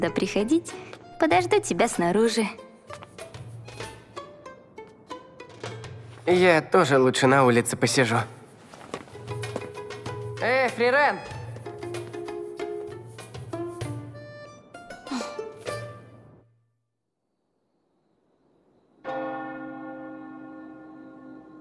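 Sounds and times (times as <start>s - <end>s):
speech: 0.0s - 3.0s, 6.3s - 8.4s, 10.4s - 11.3s
church bells pealing: 19.1s - 21.6s.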